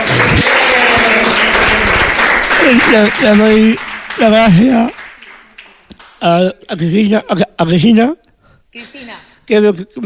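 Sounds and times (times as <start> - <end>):
audience applauding: 0.0 - 6.3
speech: 2.7 - 5.0, 6.2 - 10.0.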